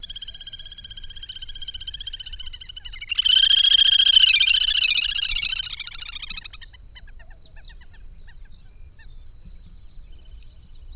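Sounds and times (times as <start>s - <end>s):
little grebe trilling call: 2.9s - 6.5s.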